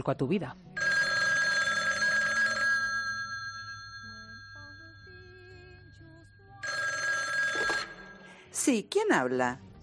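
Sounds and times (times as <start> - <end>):
speech: 0.0 - 0.9, 8.7 - 9.7
telephone ringing with a trilling bell: 0.8 - 8.4.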